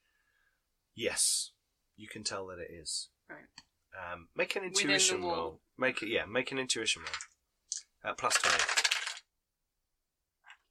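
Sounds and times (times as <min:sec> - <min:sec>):
speech: 0:01.0 - 0:07.3, 0:08.0 - 0:08.9
dice tumbling through a dice tower: 0:07.0 - 0:09.3.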